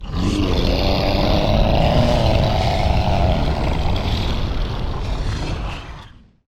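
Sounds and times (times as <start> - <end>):
monster idle sounds: 0.0 - 6.2.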